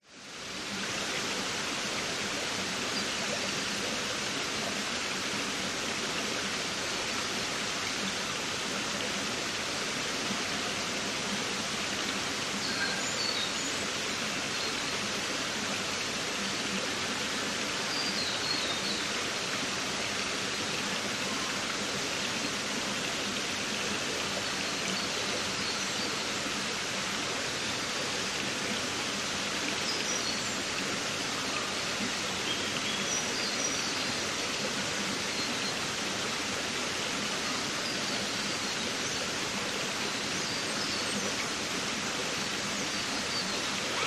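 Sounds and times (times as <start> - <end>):
forest creek water flowing in Queensland Australia: 0.0 - 44.0
young adults screaming in the distance: 43.9 - 44.0.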